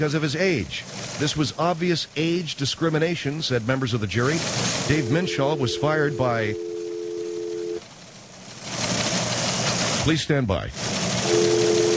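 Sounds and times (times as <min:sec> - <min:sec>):
speech: 0:00.0 - 0:06.7, 0:10.0 - 0:11.0
broadband noise: 0:00.0 - 0:11.9
telephone dial tone: 0:04.9 - 0:07.8, 0:11.2 - 0:11.9.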